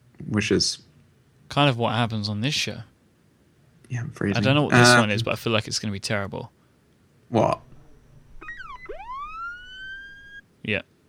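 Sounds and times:
speech: 0:00.3 - 0:00.9, 0:01.5 - 0:02.9, 0:03.9 - 0:06.6, 0:07.3 - 0:07.7, 0:10.6 - 0:10.9
thin small siren sound effect: 0:07.6 - 0:10.4.

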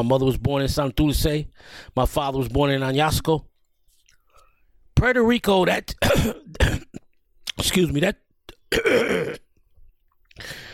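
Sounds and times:
speech: 0:00.0 - 0:03.5, 0:05.0 - 0:07.0, 0:07.6 - 0:09.4, 0:10.4 - 0:10.6
man clearing his throat: 0:06.0 - 0:07.1, 0:08.5 - 0:09.5.

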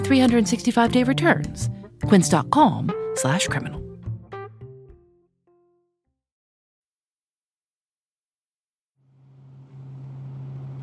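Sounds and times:
speech: 0:00.1 - 0:03.8
broadband road rumble: 0:09.1 - 0:10.8
bus engine droning while driving around the island: 0:09.1 - 0:10.8.

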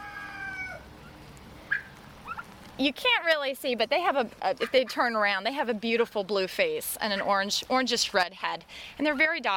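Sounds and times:
sharp loud poultry squawk: 0:00.0 - 0:00.8
poultry toms and females calling in a pen: 0:00.0 - 0:00.9
speech: 0:02.8 - 0:09.5.

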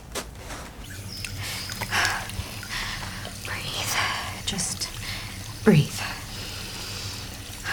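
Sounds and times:
bathroom tap water running: 0:00.0 - 0:07.7.

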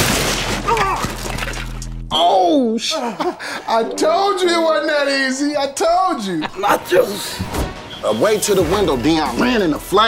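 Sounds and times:
snack table shattering: 0:00.0 - 0:01.9
speech: 0:02.8 - 0:10.0.

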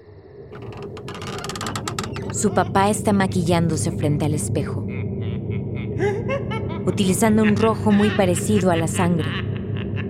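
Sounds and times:
wooden door creaking as it is pushed open: 0:00.5 - 0:02.8
laughter: 0:02.3 - 0:10.0
speech: 0:02.4 - 0:05.0, 0:06.9 - 0:09.4.

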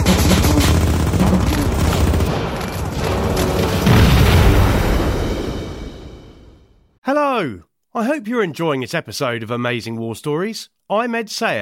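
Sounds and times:
gunfire from German positions on a cratered clifftop in Calvados: 0:00.0 - 0:05.7
booming explosions: 0:00.0 - 0:06.8
speech: 0:07.4 - 0:11.6.

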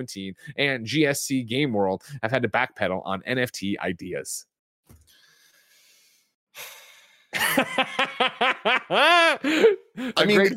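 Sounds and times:
speech: 0:00.0 - 0:04.5, 0:06.6 - 0:10.5
sharp hissing inhale through the teeth: 0:05.1 - 0:07.3
short voiced breaths and laugh-like bursts: 0:08.9 - 0:10.2.

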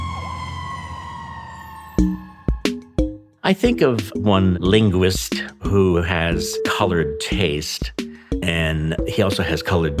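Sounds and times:
fire truck siren droning: 0:00.0 - 0:03.2
speech: 0:02.0 - 0:02.3, 0:03.4 - 0:09.9.

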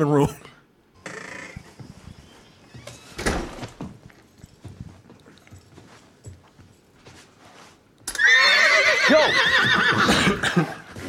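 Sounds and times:
speech: 0:00.0 - 0:00.5
horse hooves clopping and shuffling on a hard floor: 0:01.1 - 0:11.0
horse in a house whinnying: 0:08.1 - 0:10.4.

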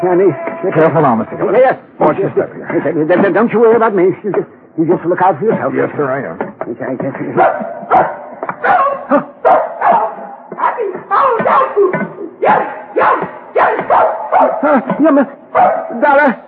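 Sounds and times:
speech: 0:00.0 - 0:09.3, 0:10.8 - 0:13.2, 0:13.9 - 0:16.4
dog barking, yipping and howling: 0:07.4 - 0:14.9, 0:15.5 - 0:16.2.

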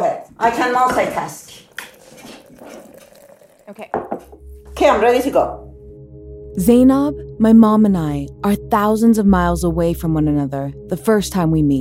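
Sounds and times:
speech: 0:00.4 - 0:01.5, 0:03.7 - 0:04.2, 0:04.8 - 0:05.7, 0:06.6 - 0:11.8
coffee pouring into a cup: 0:01.5 - 0:04.7.

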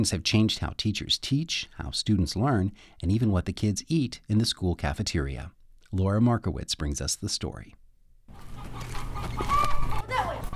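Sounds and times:
speech: 0:00.0 - 0:07.8
busy outdoor bustle: 0:08.3 - 0:10.5
chickens clucking and squawking: 0:08.3 - 0:10.5.

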